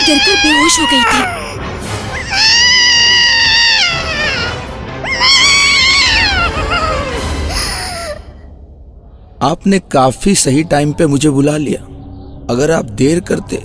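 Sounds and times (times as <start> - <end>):
loud wailing crying scream: 0.0 - 8.2
speech: 0.1 - 2.5, 9.4 - 13.6.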